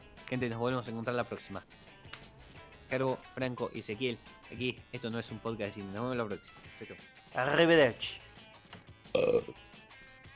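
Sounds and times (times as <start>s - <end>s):
speech: 0.3s - 2.0s, 2.9s - 8.2s, 9.2s - 9.6s
person burping: 9.1s - 9.6s.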